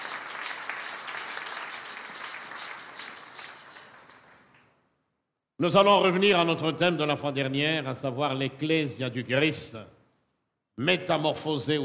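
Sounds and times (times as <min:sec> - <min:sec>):
church congregation applauding: 0:00.0 - 0:04.8
speech: 0:05.6 - 0:10.0, 0:10.8 - 0:11.8.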